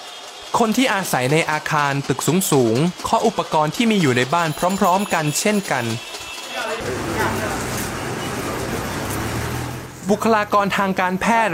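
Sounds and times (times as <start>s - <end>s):
dense street noise at an intersection at night in Myanmar: 0.0s - 11.5s
speech: 0.5s - 7.6s, 10.1s - 11.5s
indistinct crowd voices: 3.8s - 11.2s
car horns honking together in street protest at a night intersection: 4.5s - 10.0s.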